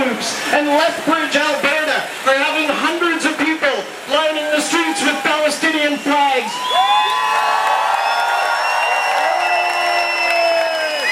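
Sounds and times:
speech: 0.2s - 2.9s
large crowd cheering and whooping at a street rally: 4.4s - 11.1s
scattered clapping: 6.6s - 11.1s.

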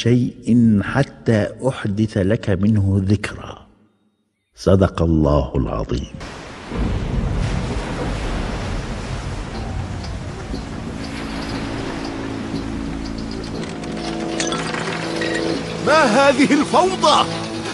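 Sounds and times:
speech: 0.0s - 3.6s, 4.6s - 7.0s, 15.9s - 17.7s
gusting wind: 6.2s - 16.0s
heavy sea waves crashing in a storm: 6.2s - 17.7s.

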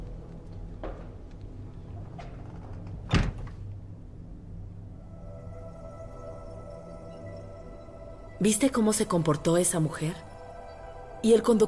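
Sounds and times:
low ambient rumble: 0.0s - 11.6s
door shutting with a solid thud: 2.2s - 3.6s
speech: 8.4s - 10.3s, 11.2s - 11.6s.

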